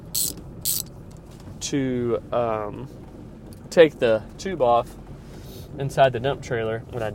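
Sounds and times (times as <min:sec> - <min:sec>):
9/16 ratchet wrench clicking: 0:00.0 - 0:00.9
low rumble inside a truck: 0:00.0 - 0:07.1
speech: 0:01.7 - 0:03.0, 0:03.7 - 0:05.0, 0:05.7 - 0:07.1.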